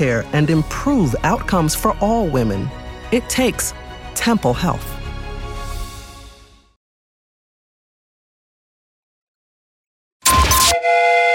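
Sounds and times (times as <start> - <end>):
speech: 0.0 - 5.0
loud sustained train whistle blast: 10.2 - 11.3.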